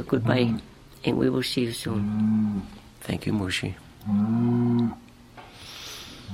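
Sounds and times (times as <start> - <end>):
speech: 0.0 - 5.0
soft noise: 0.0 - 6.3
cow mooing: 1.9 - 2.8, 4.0 - 5.0.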